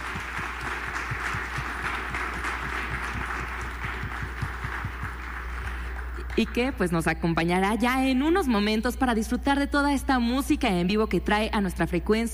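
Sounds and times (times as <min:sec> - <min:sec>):
audience applause: 0:00.0 - 0:06.7
speech: 0:06.4 - 0:12.3.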